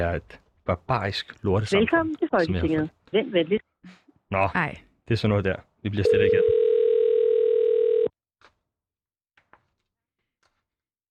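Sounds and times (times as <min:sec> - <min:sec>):
speech: 0:00.0 - 0:06.6
telephone ringing tone during outgoing call: 0:06.0 - 0:08.1.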